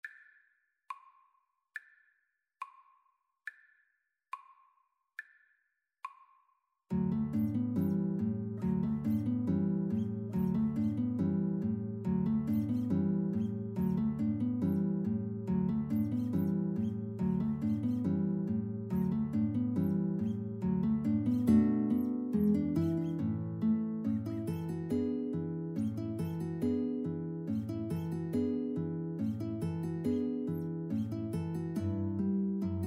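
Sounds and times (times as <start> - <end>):
guitar trio playing: 7.0 - 32.8.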